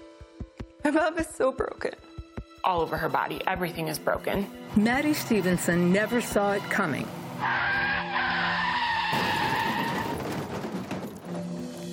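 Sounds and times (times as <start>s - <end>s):
speech: 0.9s - 7.8s
tire screech from a skidding car: 5.2s - 11.0s
heavy head-on car crash with crunching, rattling debris: 9.0s - 11.5s.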